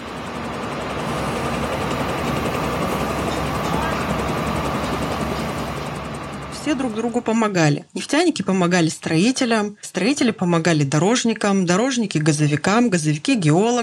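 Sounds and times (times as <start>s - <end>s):
helicopter flying overhead with rotor chopping: 0.0s - 7.5s
speech: 6.7s - 13.8s.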